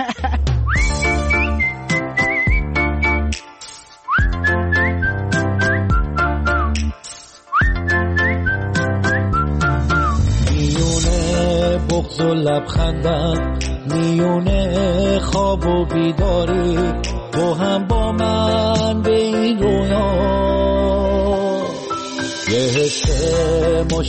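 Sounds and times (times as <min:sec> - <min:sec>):
instrumental backing with bass and chords: 0:00.0 - 0:24.0
person whistling a bright sliding tune: 0:00.6 - 0:03.4, 0:04.0 - 0:10.3
speech: 0:12.2 - 0:21.5, 0:22.5 - 0:24.0.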